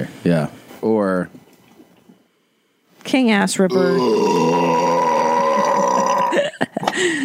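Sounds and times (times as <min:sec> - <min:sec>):
speech: 0:00.0 - 0:01.4, 0:03.1 - 0:04.7
short choppy gulps and grunts: 0:03.7 - 0:06.4
long loud burp: 0:03.7 - 0:06.5.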